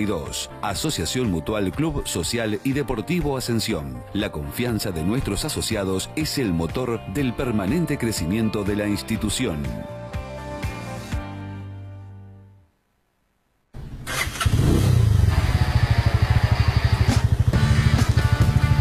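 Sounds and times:
speech: 0:00.0 - 0:10.0
motorcycle engine revving and idling: 0:13.8 - 0:18.8.

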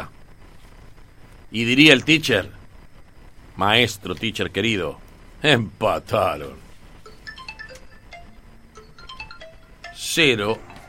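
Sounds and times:
speech: 0:01.5 - 0:02.6, 0:03.6 - 0:06.6, 0:10.1 - 0:10.7
mobile phone ringing with melodic electronic beep ringtone in a radio studio: 0:07.0 - 0:10.8.

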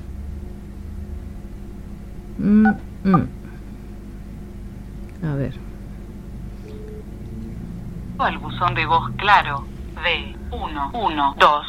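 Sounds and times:
speech: 0:02.4 - 0:03.4, 0:05.2 - 0:05.7, 0:08.2 - 0:11.6
tinny narrow-band recorded voicemail voice over a phone line: 0:08.2 - 0:11.6.

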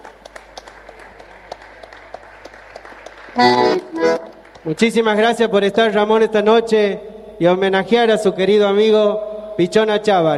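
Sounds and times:
soft crowd bed: 0:00.0 - 0:04.8
audience applause: 0:00.0 - 0:05.0
speech: 0:03.4 - 0:03.8, 0:04.6 - 0:10.3
loud tonal burst: 0:06.0 - 0:10.3.

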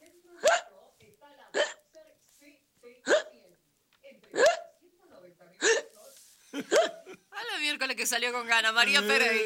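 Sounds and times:
sharp voiced hiccups: 0:00.4 - 0:00.8, 0:01.5 - 0:01.9, 0:03.0 - 0:03.4, 0:04.3 - 0:04.8, 0:05.6 - 0:06.0, 0:06.7 - 0:07.1
speech: 0:07.7 - 0:09.4.

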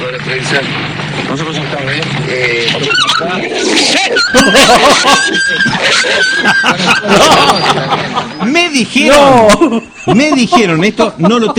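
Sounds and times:
speech: 0:00.2 - 0:11.5
dogs barking and whimpering: 0:02.8 - 0:07.9
laughter: 0:03.2 - 0:11.5.

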